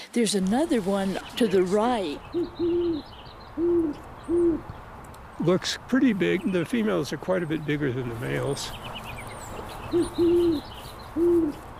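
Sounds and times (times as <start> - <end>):
speech: 0.2 - 4.8, 5.4 - 9.0, 9.9 - 11.6
female Great Horned Owl hooting in a park near Boulder: 2.1 - 4.7, 9.9 - 11.6.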